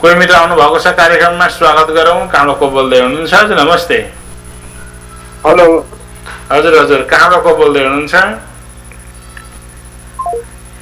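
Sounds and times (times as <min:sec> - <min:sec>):
speech: 0:00.0 - 0:04.2, 0:05.4 - 0:08.5
faint hum: 0:00.0 - 0:10.8
electronic telephone line tones as a call is cut off: 0:10.2 - 0:10.5.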